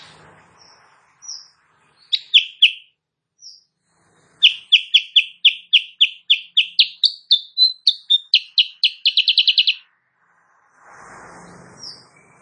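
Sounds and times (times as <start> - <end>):
Sooty-headed bulbul singing energetically in the morning: 0.0 - 3.7, 4.4 - 9.8.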